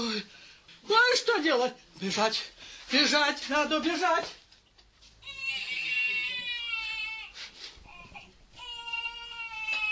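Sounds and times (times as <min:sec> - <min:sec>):
speech: 0:00.2 - 0:04.4
abandoned infant alone in a forest crying: 0:05.2 - 0:09.8.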